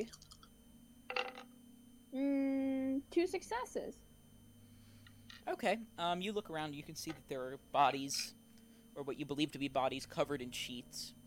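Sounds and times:
speech: 0:00.0 - 0:00.3, 0:03.1 - 0:04.1, 0:05.5 - 0:08.4, 0:09.0 - 0:11.2
dice tumbling across a tabletop: 0:01.1 - 0:01.5.

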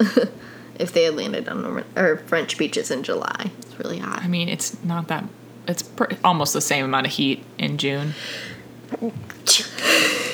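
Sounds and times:
speech: 0:00.0 - 0:10.2
person sneezing: 0:08.9 - 0:10.3.

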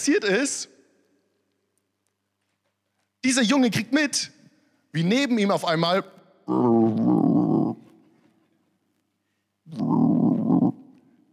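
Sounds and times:
speech: 0:00.0 - 0:00.8, 0:03.2 - 0:07.0
voice imitating growling stomachs of hungry people: 0:06.5 - 0:07.9, 0:09.7 - 0:11.1.

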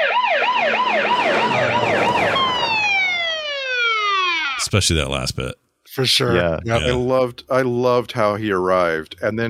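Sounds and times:
road noise: 0:00.0 - 0:04.0
late 1970s police car siren: 0:00.0 - 0:04.6
speech: 0:04.6 - 0:09.4.

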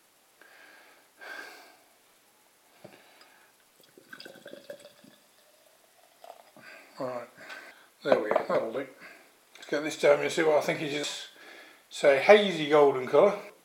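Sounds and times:
beer pouring from a 330ml can into a glass: 0:03.2 - 0:07.1
beer fizzing and foaming over a glass: 0:03.8 - 0:06.8
speech: 0:07.0 - 0:07.4, 0:08.0 - 0:09.1, 0:09.7 - 0:11.3, 0:11.9 - 0:13.5.

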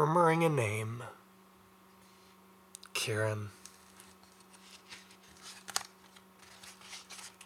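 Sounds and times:
speech: 0:00.0 - 0:01.2, 0:03.0 - 0:03.6
faint steady hum: 0:00.0 - 0:07.4
book pages being turned: 0:03.6 - 0:07.4.

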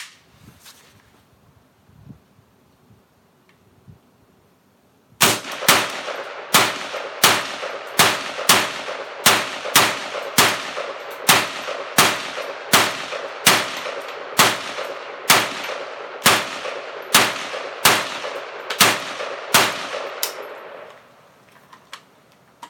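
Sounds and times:
new AK rifle shooting its first rounds: 0:05.2 - 0:21.0.

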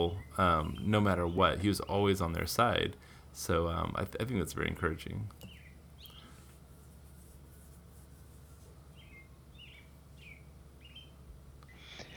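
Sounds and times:
steady low hum: 0:00.0 - 0:12.1
speech: 0:00.1 - 0:05.5
short high bird chirps: 0:05.4 - 0:06.4, 0:09.0 - 0:12.1.

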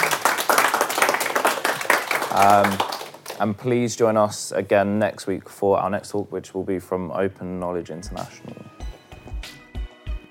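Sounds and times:
audience applause for a speaker at a lunchtime lecture: 0:00.0 - 0:03.4
speech: 0:02.3 - 0:08.6.

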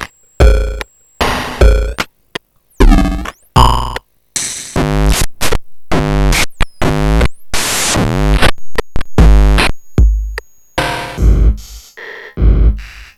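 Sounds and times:
buzzy pitched tones sweeping and wobbling: 0:00.0 - 0:02.1, 0:02.8 - 0:04.0, 0:04.7 - 0:11.8
circuit-bent drum machine electronics sputtering: 0:00.0 - 0:02.1, 0:02.8 - 0:11.9
harsh hiss and static: 0:00.0 - 0:13.1.

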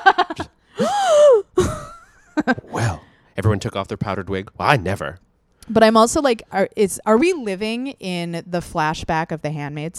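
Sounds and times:
person acting out a theatrical courtroom gasp: 0:00.7 - 0:01.4
long drawn-out vocal ooh swooping up and down: 0:02.6 - 0:03.1
speech: 0:03.6 - 0:09.9.

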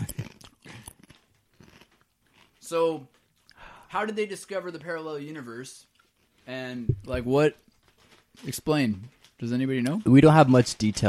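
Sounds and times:
person biting and crunching on a chip: 0:00.0 - 0:03.5
speech: 0:02.7 - 0:03.2, 0:03.9 - 0:07.6, 0:08.4 - 0:11.0.

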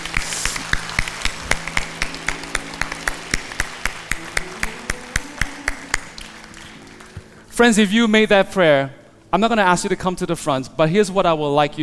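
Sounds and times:
audience clapping after a prayer: 0:00.0 - 0:07.5
soft sustained musical tones: 0:00.0 - 0:10.7
speech: 0:07.6 - 0:11.8.

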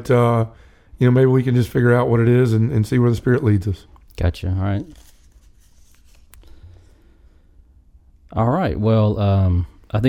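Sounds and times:
speech: 0:00.0 - 0:05.0, 0:08.4 - 0:10.0
paper rustling and crinkling as it is pulled out of a bag: 0:04.7 - 0:07.0.

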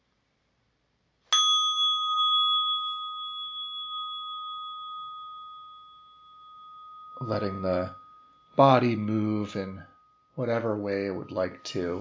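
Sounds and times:
single meditation bell struck: 0:01.3 - 0:11.9
speech: 0:07.2 - 0:08.0, 0:08.6 - 0:11.9.

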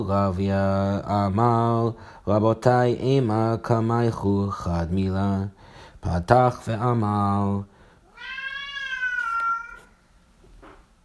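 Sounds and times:
speech: 0:00.0 - 0:07.7
cat meowing: 0:08.1 - 0:10.0.

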